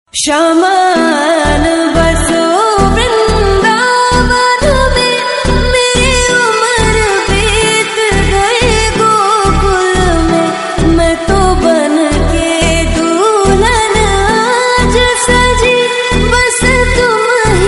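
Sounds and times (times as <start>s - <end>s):
slowed lofi music with reverb: 0.4s - 17.6s.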